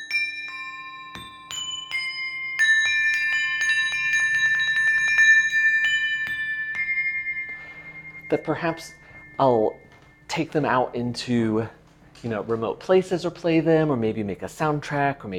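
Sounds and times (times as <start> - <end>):
saucer bells ringing: 0.0 - 11.9
speech: 8.3 - 15.3.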